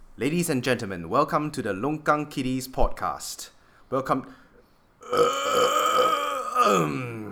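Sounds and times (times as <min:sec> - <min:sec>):
speech: 0:00.2 - 0:04.4, 0:05.1 - 0:07.2
long loud burp: 0:05.0 - 0:07.2.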